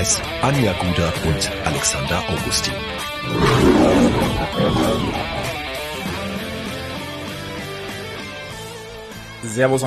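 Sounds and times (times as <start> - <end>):
speech: 0.0 - 5.4, 9.4 - 9.8
lion roaring: 3.2 - 5.7.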